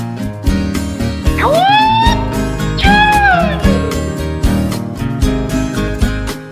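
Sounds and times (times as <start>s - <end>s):
steady rhythmic music backing: 1.3s - 6.3s
cat meowing: 1.4s - 4.0s.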